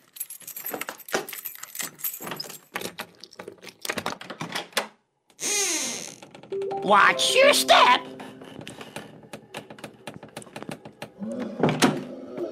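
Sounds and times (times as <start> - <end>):
keys jangling: 0.0 - 3.0
door swinging open with a drawn-out creak: 5.4 - 6.6, 8.4 - 12.2
speech: 6.8 - 8.2.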